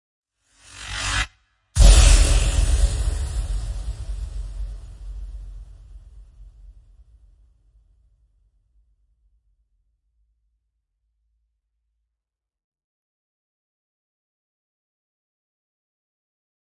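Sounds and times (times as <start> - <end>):
abstract explosion impacts: 1.8 - 7.1.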